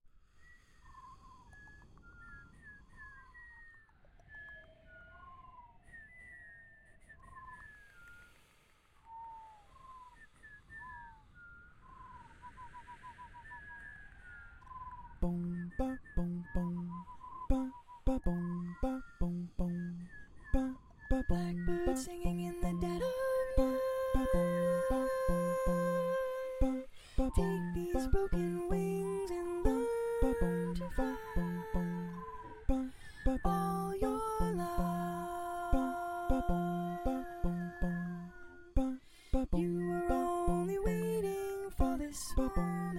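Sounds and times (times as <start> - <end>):
bass: 15.2 - 42.9.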